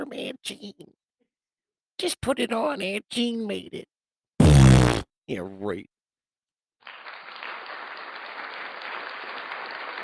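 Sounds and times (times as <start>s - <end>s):
speech: 0.0s - 1.0s, 2.0s - 3.9s, 4.8s - 6.0s
large crowd applauding: 6.8s - 10.0s.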